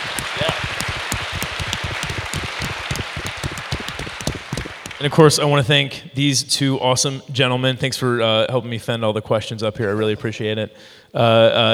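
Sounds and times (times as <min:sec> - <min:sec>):
audience applause in a theater: 0:00.0 - 0:05.0
speech: 0:05.0 - 0:11.7.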